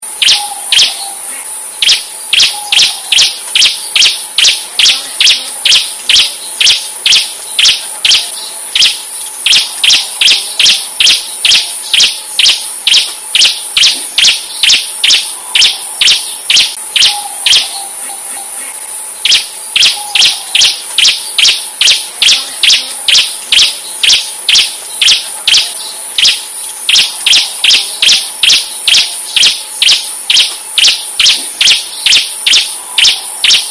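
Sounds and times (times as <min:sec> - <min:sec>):
ciblek bird chirping keciap keciap: 0:00.1 - 0:33.6.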